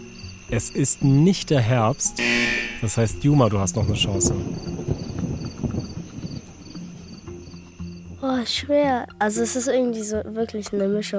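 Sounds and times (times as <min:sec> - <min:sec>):
crickets chirping: 0:00.0 - 0:10.2
speech: 0:00.5 - 0:05.1, 0:08.4 - 0:11.1
low rumbling background of outdoor noise: 0:03.4 - 0:07.7.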